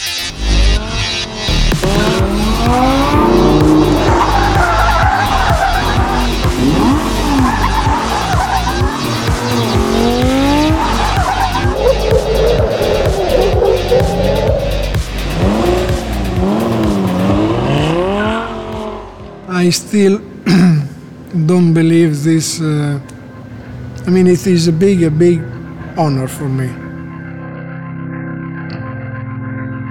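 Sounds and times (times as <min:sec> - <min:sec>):
Lamborghini Gallardo sports car engine roaring: 0:00.1 - 0:21.3
Lamborghini Gallardo tires squealing and skidding: 0:00.3 - 0:19.2
speech: 0:19.7 - 0:20.8, 0:21.3 - 0:23.1, 0:24.1 - 0:26.8.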